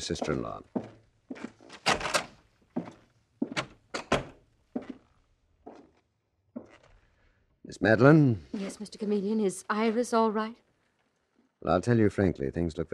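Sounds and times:
speech: 0:00.0 - 0:01.0, 0:07.8 - 0:10.6, 0:11.6 - 0:12.9
door opening and closing: 0:01.4 - 0:04.5.

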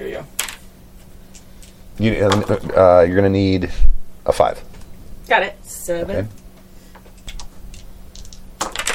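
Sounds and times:
speech: 0:02.0 - 0:04.7, 0:05.3 - 0:06.4
dice clattering and bouncing out of a dice tray onto a hard surface: 0:07.2 - 0:08.9.

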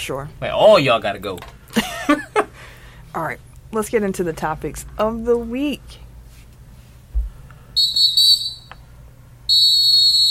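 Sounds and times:
speech: 0:00.0 - 0:02.3, 0:03.1 - 0:06.0
strong shrill whistle blasts: 0:07.8 - 0:08.8, 0:09.5 - 0:10.2.

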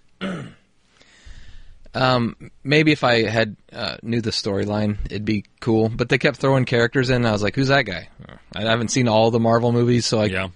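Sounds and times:
sharp throat clearing: 0:00.2 - 0:00.7
low rumbling breath or noise: 0:01.0 - 0:01.9
speech: 0:02.0 - 0:10.5.

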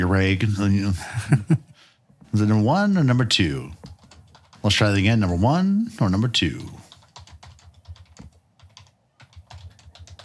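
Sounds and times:
speech: 0:00.0 - 0:01.7, 0:02.3 - 0:03.9, 0:04.6 - 0:06.8
rapid typing on a computer keyboard: 0:03.4 - 0:05.1, 0:06.4 - 0:10.2.

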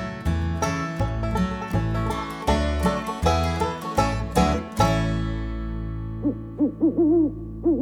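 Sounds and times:
strummed full musical passage: 0:00.0 - 0:07.7
owl hooting: 0:06.2 - 0:07.8.

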